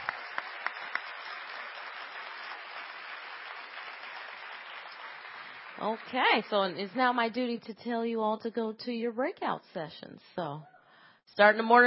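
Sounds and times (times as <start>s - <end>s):
audience applauding a speech: 0.0s - 6.5s
speech: 5.8s - 10.7s, 11.3s - 11.8s.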